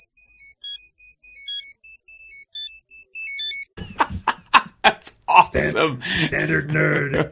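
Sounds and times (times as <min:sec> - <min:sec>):
high-pitched electronic phone ringtone melody of short beeping tones: 0:00.0 - 0:03.8
bursts of laughter: 0:03.8 - 0:07.3
speech: 0:05.0 - 0:07.3.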